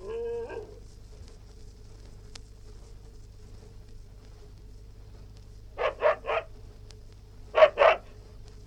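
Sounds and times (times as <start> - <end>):
West Highland white terrier whining indoors: 0.0 - 0.8
West Highland white terrier sharp high barks indoors: 5.8 - 6.5, 7.5 - 8.1.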